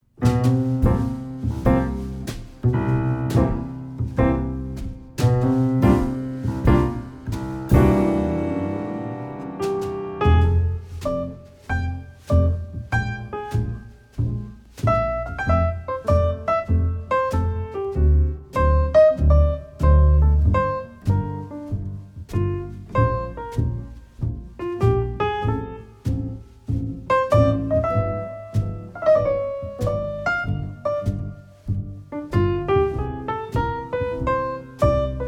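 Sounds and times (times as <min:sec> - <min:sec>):
old school jazz standards on piano: 0:00.0 - 0:35.2.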